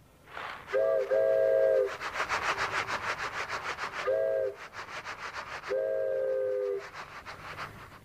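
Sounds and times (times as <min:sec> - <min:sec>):
rhythmic chuffing noise: 0:00.3 - 0:08.0
hand-whittled wooden toy train whistle blown: 0:00.7 - 0:02.0, 0:04.0 - 0:04.6, 0:05.7 - 0:06.9.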